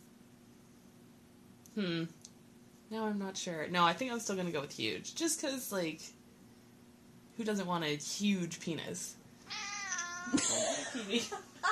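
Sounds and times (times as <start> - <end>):
speech: 1.8 - 2.2, 2.9 - 6.2, 7.4 - 9.6, 10.2 - 11.7
cat meowing: 9.5 - 10.4.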